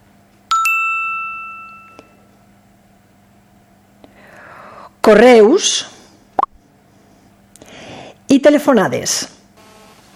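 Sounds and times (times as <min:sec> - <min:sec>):
quiet hum: 0:00.0 - 0:10.1
bright two-note phone notification chime: 0:00.5 - 0:02.2
speech: 0:05.1 - 0:06.0, 0:08.4 - 0:09.3.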